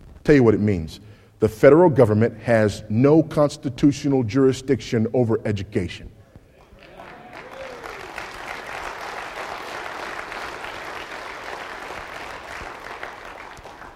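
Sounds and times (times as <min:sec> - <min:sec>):
speech: 0:00.2 - 0:06.1
large audience applauding: 0:06.6 - 0:13.9.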